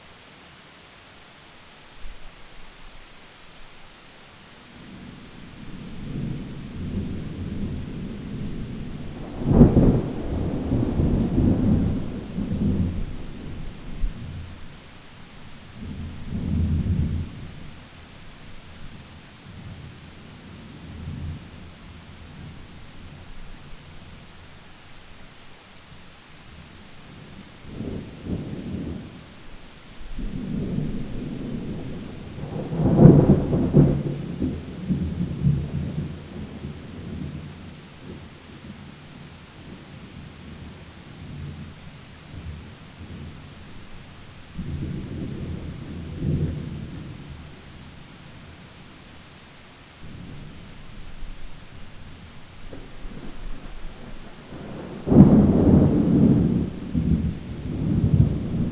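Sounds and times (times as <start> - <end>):
thunderstorm heard from inside: 4.8 - 14.8, 15.6 - 17.9, 27.1 - 39.0, 39.6 - 48.7, 50.0 - 58.7.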